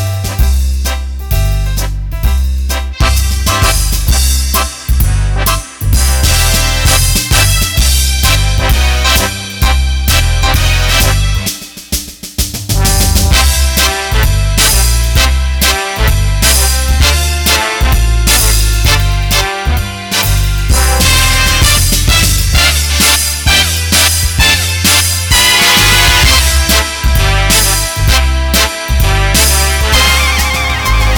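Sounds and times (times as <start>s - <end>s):
Roland BK7M accordion playing a foxtrot: 0.1s - 11.7s, 12.7s - 31.1s.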